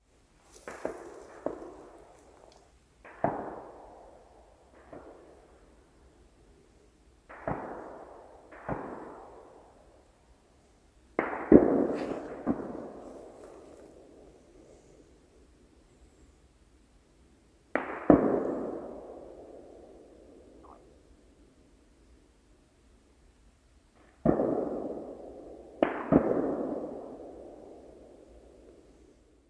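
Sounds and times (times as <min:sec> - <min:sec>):
gunfire: 0:00.6 - 0:02.2, 0:03.0 - 0:05.6, 0:07.2 - 0:09.8, 0:11.2 - 0:14.1, 0:17.7 - 0:19.6, 0:24.2 - 0:28.0.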